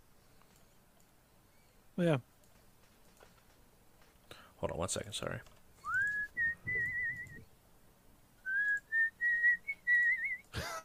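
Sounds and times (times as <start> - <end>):
speech: 2.0 - 2.3, 4.6 - 5.6
person whistling a tune: 5.9 - 7.4, 8.5 - 10.4.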